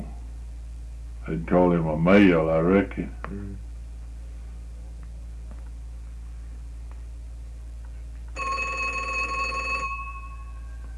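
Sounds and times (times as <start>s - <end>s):
low hum: 0.0s - 10.9s
speech: 1.3s - 3.7s
party-line telephone bell ringing with a bright metallic trill: 8.4s - 10.9s.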